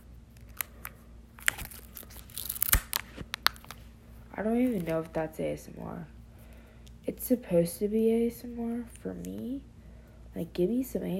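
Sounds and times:
protective plastic film peeled off a phone charger: 0.3s - 3.9s, 4.6s - 5.2s
speech: 4.4s - 6.2s, 7.2s - 9.7s, 10.4s - 11.1s.

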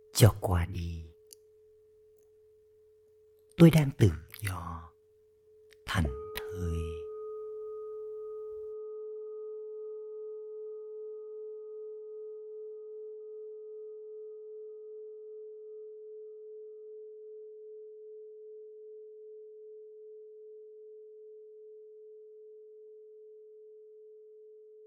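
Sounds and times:
soft voice sounds: 0.1s - 1.2s, 3.6s - 5.0s, 5.8s - 7.1s
speech: 0.2s - 1.0s, 3.6s - 4.7s
meditation bell struck and ringing: 5.0s - 18.8s.

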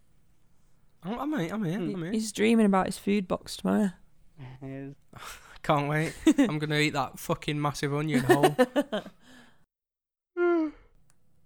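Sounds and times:
speech: 1.0s - 9.2s
laughter: 8.2s - 9.1s
breathy vocal sound: 10.4s - 11.0s
person yawning loudly: 10.4s - 11.0s.

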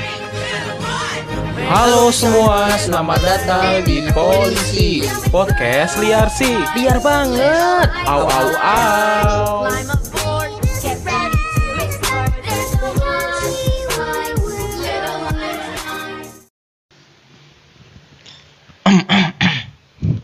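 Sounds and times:
upbeat music intro: 0.0s - 16.5s
speech: 1.7s - 10.0s
person clearing throat close to the mic: 18.8s - 20.2s.

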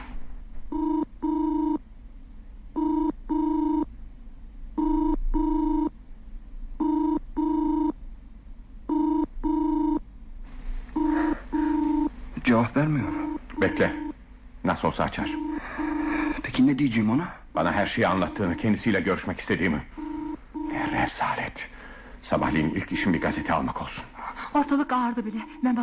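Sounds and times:
telephone ringing: 0.7s - 1.8s, 2.8s - 3.9s, 4.8s - 6.0s, 6.8s - 8.0s, 8.9s - 10.0s, 11.0s - 14.2s, 15.0s - 16.6s, 17.6s - 21.1s, 22.3s - 23.9s
speech: 12.6s - 13.1s, 14.9s - 15.5s, 16.6s - 19.9s, 22.4s - 25.8s.

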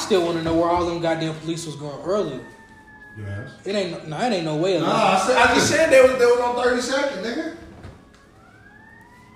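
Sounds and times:
two ambulance sirens wailing: 0.0s - 9.3s
speech: 0.1s - 2.6s, 3.2s - 7.6s.

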